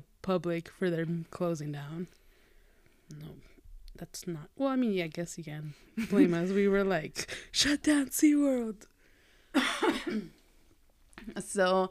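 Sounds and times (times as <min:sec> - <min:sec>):
speech: 0:00.2 - 0:02.2, 0:03.1 - 0:08.9, 0:09.5 - 0:10.4, 0:11.2 - 0:11.9
harsh chesty coughs: 0:09.6 - 0:10.4.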